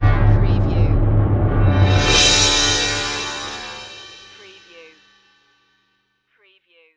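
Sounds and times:
orchestral music: 0.0 - 5.1.

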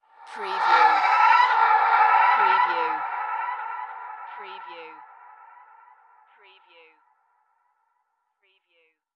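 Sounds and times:
ghost shriek: 0.1 - 6.3.

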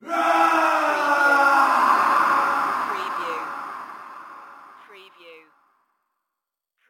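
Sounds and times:
male scream with reverb echo: 0.0 - 4.8.

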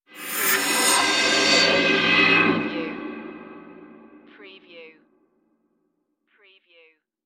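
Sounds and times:
cymbal production element: 0.1 - 3.4.

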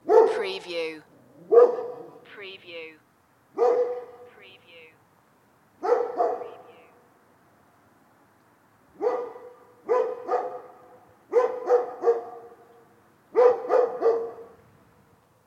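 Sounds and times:
distant dog barking: 0.0 - 0.4, 1.4 - 2.2, 3.5 - 4.3, 5.8 - 6.8, 9.0 - 14.6.

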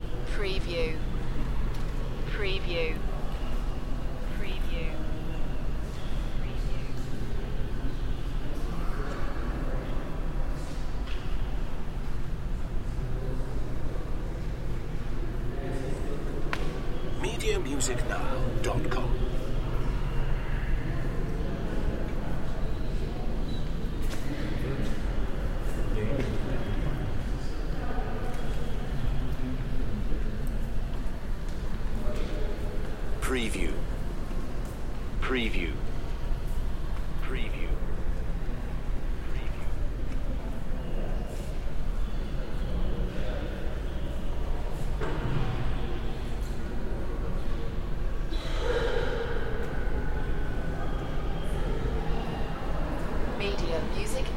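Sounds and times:
light crowd in a large hall of a natural history museum: 0.0 - 54.3.

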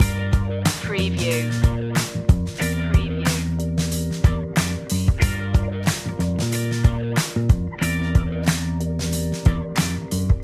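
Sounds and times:
sweet rhythm and blues groove loop: 0.0 - 10.4.

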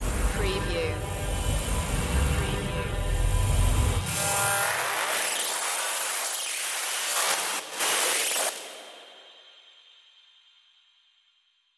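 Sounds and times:
futuristic voltage glitch: 0.0 - 9.1.

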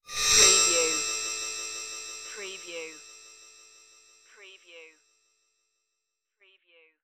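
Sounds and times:
shiny magic transformation: 0.1 - 1.2, 2.3 - 3.1.

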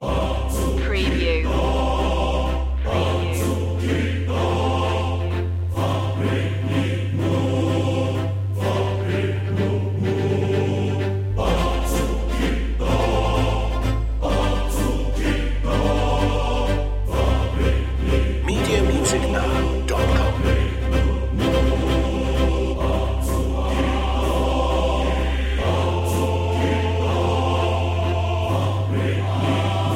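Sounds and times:
choir singing: 0.0 - 29.9
marcato strings: 0.0 - 29.9.

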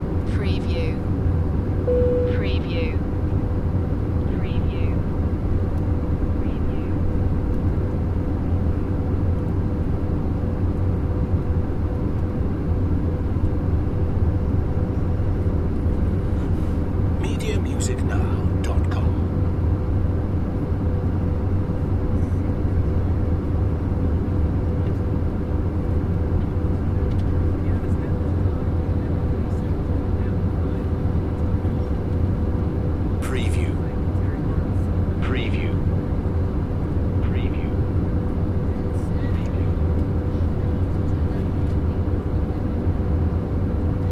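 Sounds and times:
aircraft interior room tone: 0.0 - 44.0
aircraft interior page beep: 1.9 - 2.6
faint walla in aircraft interior: 27.4 - 32.3, 38.4 - 44.0.

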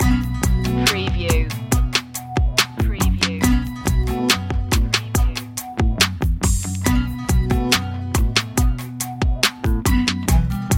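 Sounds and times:
deep hip hop loop: 0.0 - 10.7.

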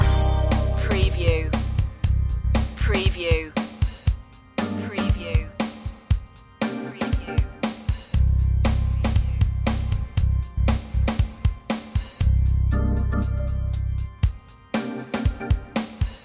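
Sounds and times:
city blues music loop: 0.0 - 16.2.

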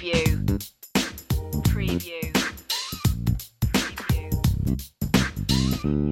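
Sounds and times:
90s hip hop sitcom sting bass and drums: 0.2 - 5.9.

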